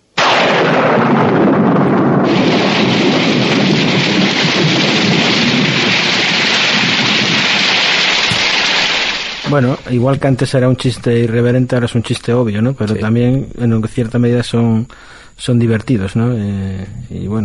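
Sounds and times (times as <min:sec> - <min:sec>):
deep rumbling thunder: 0:00.2 - 0:09.8
sudden downpour of heavy rain: 0:00.2 - 0:09.8
speech: 0:09.5 - 0:17.4.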